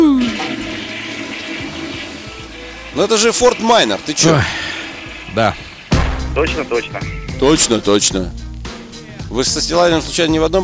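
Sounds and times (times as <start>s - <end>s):
toilet flushing with rush of swirling water: 0.0s - 6.8s
speech: 3.0s - 4.6s, 5.3s - 5.7s, 6.4s - 8.4s, 9.3s - 10.6s.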